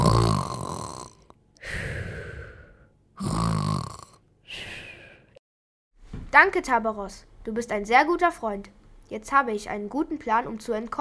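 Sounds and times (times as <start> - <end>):
loud snoring: 0.0 - 4.2
speech: 6.4 - 10.9.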